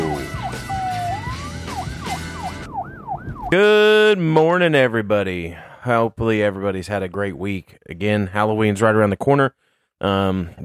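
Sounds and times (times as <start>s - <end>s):
emergency vehicle siren wailing and yelping: 0.0s - 4.0s
noise: 3.5s - 10.6s
speech: 3.5s - 10.6s.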